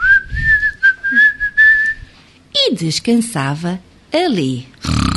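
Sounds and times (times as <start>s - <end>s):
person whistling a tune: 0.0s - 2.1s
speech: 2.8s - 5.0s.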